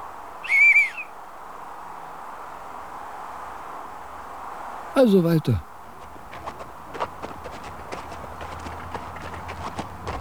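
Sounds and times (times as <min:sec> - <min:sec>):
person whistling for help: 0:00.5 - 0:01.0
speech: 0:05.0 - 0:05.7.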